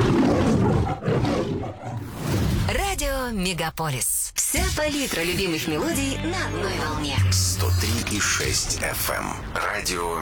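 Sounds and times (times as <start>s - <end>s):
lion roaring: 0.0s - 2.0s
speech: 3.3s - 10.1s.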